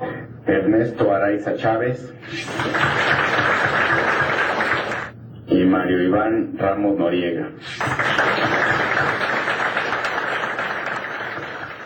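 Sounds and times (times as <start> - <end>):
speech: 0.5 - 3.9, 5.5 - 9.2
audience applauding: 2.3 - 5.1, 7.7 - 11.8.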